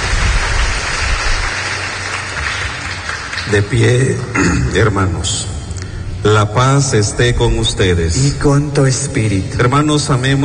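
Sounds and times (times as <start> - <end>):
congregation applauding at a church Mass: 0.0 - 4.4
speech: 3.5 - 5.6, 6.2 - 10.4.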